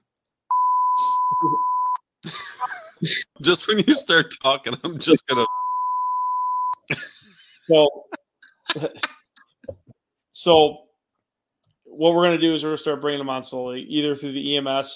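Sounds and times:
censor beep from a beep button: 0.5 - 2.0, 5.4 - 6.8
speech: 1.3 - 5.6, 7.7 - 8.1, 8.7 - 9.2, 10.4 - 10.8, 12.0 - 14.9
laughter: 2.2 - 5.5, 6.9 - 9.2
voice beneath censor beep: 3.8 - 5.5.

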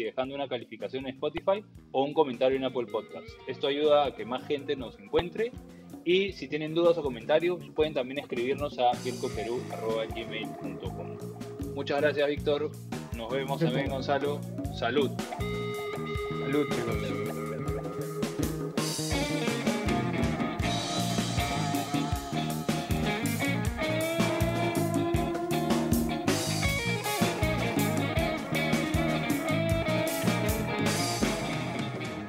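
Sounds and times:
speech: 0.0 - 15.6, 16.4 - 17.4
full band music by a Peruvian band: 8.3 - 32.2.

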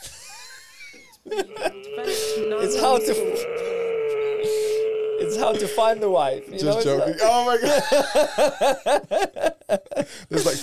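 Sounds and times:
laughter: 0.0 - 10.1
speech: 1.2 - 3.6, 5.2 - 10.6
heavy strained wheezing breaths from a student doing a breathing exercise: 1.4 - 7.1.

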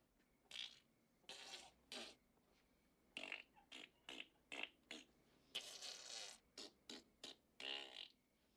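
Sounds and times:
fart noises blown with the mouth as raspberries: 0.5 - 2.2, 3.2 - 8.2.

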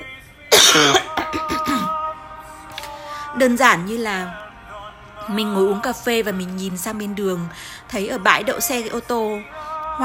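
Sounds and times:
person coughing: 0.5 - 2.0
speech: 0.7 - 1.1, 3.4 - 4.4, 5.3 - 10.0.

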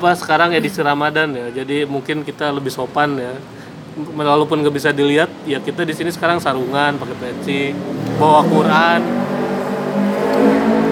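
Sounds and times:
speech: 0.0 - 9.3
motorcycle engine roaring as it speeds past on the street: 5.2 - 10.9.

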